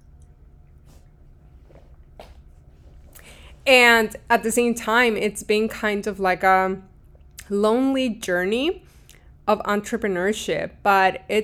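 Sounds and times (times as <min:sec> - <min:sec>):
person drinking water with soft gulps and slurps: 0:00.0 - 0:03.6, 0:06.9 - 0:07.5
low steady hum: 0:00.0 - 0:11.4
speech: 0:03.7 - 0:06.9, 0:07.5 - 0:08.9, 0:09.5 - 0:11.4.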